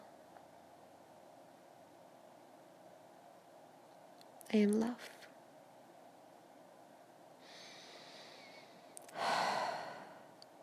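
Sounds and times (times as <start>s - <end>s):
speech: 4.5s - 5.2s
slow soft cleansing breath exhaled during guided meditation: 7.4s - 10.3s.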